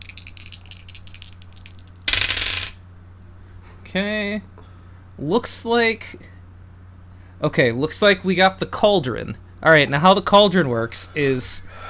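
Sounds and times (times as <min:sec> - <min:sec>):
dice being rolled: 0:00.0 - 0:02.8
speech: 0:03.9 - 0:04.6, 0:05.2 - 0:06.3, 0:07.4 - 0:11.8.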